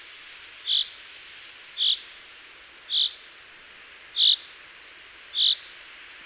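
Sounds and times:
low steady hiss: 0.0s - 6.2s
Common chaffinch calling: 0.6s - 1.0s, 1.8s - 2.1s, 2.9s - 3.2s, 4.2s - 4.5s, 5.3s - 5.6s.

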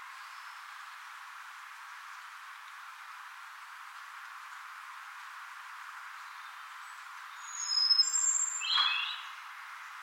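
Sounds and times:
steady background hiss: 0.0s - 10.0s
European robin singing Erithacus rubecula: 6.2s - 9.4s.

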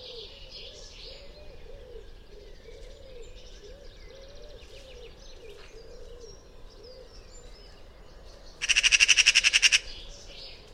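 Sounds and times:
Eurasian magpie Pica pica chatter call: 8.6s - 10.0s.

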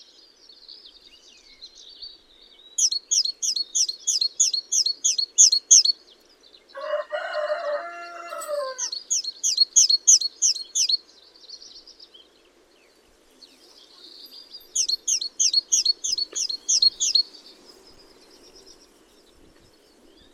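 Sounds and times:
Parus major great tit uttering high sharp repeated notes: 2.8s - 5.9s, 8.4s - 11.0s, 13.9s - 17.3s
rooster crowing: 6.7s - 9.0s.

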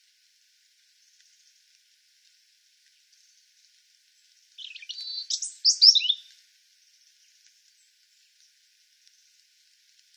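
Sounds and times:
European robin Erithacus rubecula song: 4.6s - 6.3s.

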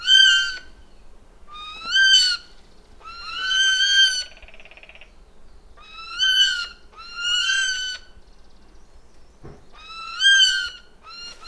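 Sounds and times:
Eurasian jay giving drawn-out mewing calls: 0.0s - 0.8s, 1.5s - 5.2s, 5.8s - 8.2s, 9.7s - 11.4s.

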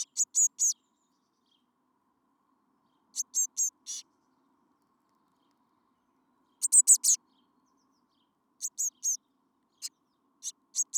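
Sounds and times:
Eurasian blue tit Cyanistes caeruleus calling: 0.0s - 0.8s, 3.2s - 4.0s, 6.6s - 7.2s, 8.6s - 9.2s, 9.8s - 10.9s.

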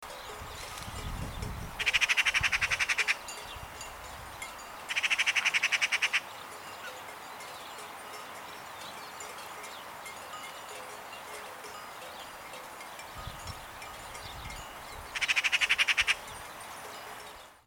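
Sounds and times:
Eurasian magpie chatter, Pica pica: 1.8s - 3.3s, 4.9s - 6.3s, 15.1s - 16.3s.

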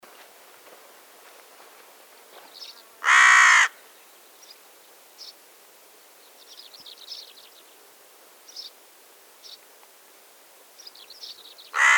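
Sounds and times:
Corvus corone carrion crow cawing: 3.0s - 3.8s, 11.8s - 11.9s.

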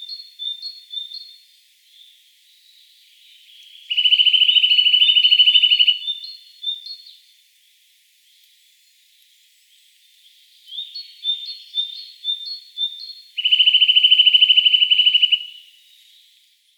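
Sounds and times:
Eurasian nuthatch Sitta europaea calling: 3.6s - 7.0s, 10.7s - 15.7s.

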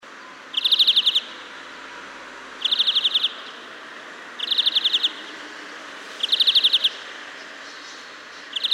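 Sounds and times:
European greenfinch Chloris chloris giving ticking trills: 0.5s - 1.4s, 2.6s - 3.5s, 4.4s - 5.2s, 6.2s - 7.0s, 8.5s - 8.7s.

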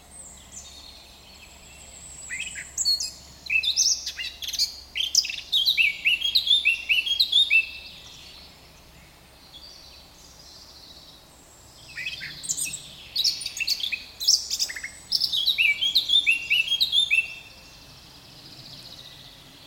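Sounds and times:
Eurasian blackcap Sylvia atricapilla singing: 2.2s - 7.9s, 11.9s - 17.6s.

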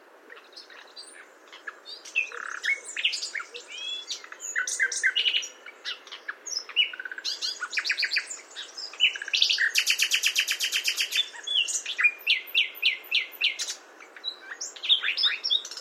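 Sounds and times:
common nightingale Luscinia megarhynchos song: 0.0s - 15.7s.

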